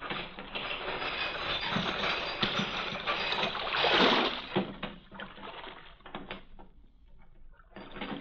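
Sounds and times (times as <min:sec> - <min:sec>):
heavy harbor chain rattling as it is lowered: 0:00.0 - 0:04.6.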